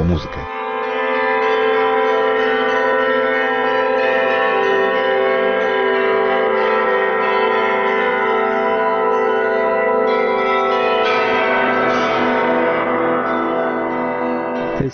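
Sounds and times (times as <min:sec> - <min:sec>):
speech: 0:00.0 - 0:00.6
church bells rung by a bell ringer at a museum: 0:00.0 - 0:14.9.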